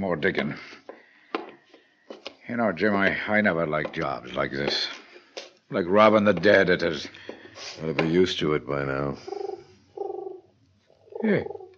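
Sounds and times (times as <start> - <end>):
speech: 0.0 - 0.8, 2.5 - 5.0, 5.7 - 9.4, 11.2 - 11.6
pigeon on a windowsill cooing: 9.1 - 11.7.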